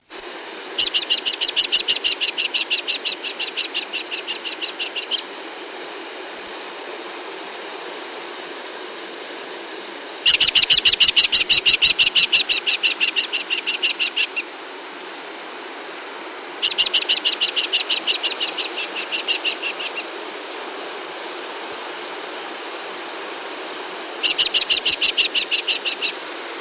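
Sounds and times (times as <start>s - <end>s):
New Zealand falcon calling: 0.8s - 5.3s, 10.2s - 14.5s, 16.6s - 20.1s, 24.2s - 26.2s.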